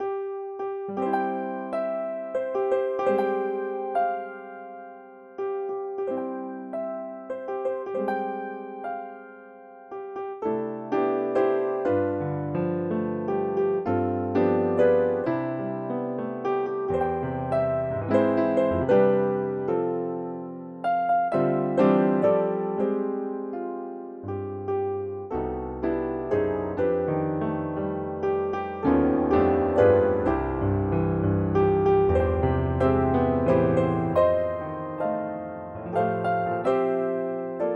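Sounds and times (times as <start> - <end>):
birthday jazz on piano: 0.0 - 37.7.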